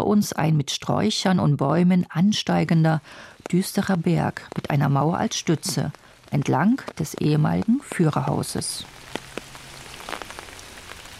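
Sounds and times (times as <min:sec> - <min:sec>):
speech: 0:00.1 - 0:09.0
steady rain on an umbrella on a foggy damp May day: 0:02.5 - 0:11.1.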